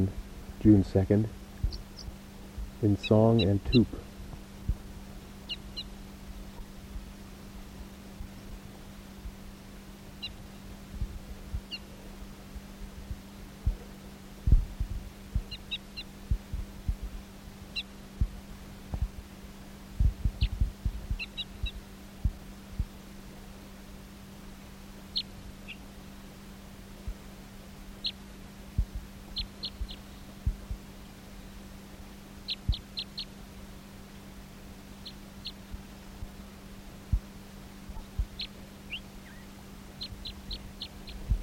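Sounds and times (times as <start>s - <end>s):
speech: 0.0s - 1.4s, 2.8s - 4.0s
steady low hum: 0.0s - 41.4s
bird singing: 1.6s - 2.2s, 2.8s - 4.0s, 5.4s - 6.6s, 10.2s - 10.6s, 11.6s - 11.9s, 15.4s - 16.2s, 17.7s - 18.0s, 20.3s - 21.8s, 25.1s - 25.9s, 28.0s - 28.3s, 29.3s - 30.3s, 32.4s - 33.4s, 35.0s - 35.6s, 38.0s - 41.4s.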